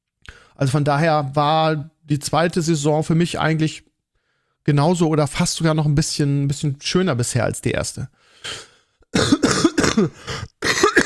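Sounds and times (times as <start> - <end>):
speech: 0.6 - 3.9, 4.6 - 9.4, 10.0 - 10.9
harsh coughing: 8.4 - 11.0.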